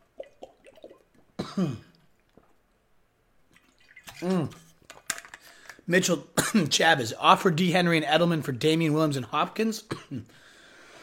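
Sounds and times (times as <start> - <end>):
person sipping water: 0.0 - 2.9, 3.5 - 4.9
voiced throat clearing: 1.4 - 2.0
speech: 1.6 - 1.9, 4.2 - 4.6, 5.9 - 10.5.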